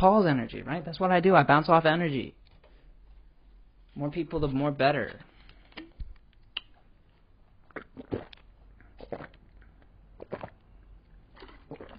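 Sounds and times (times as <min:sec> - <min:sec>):
speech: 0:00.0 - 0:02.4, 0:04.0 - 0:05.3
person gulping while drinking in Bangkok: 0:07.6 - 0:11.9.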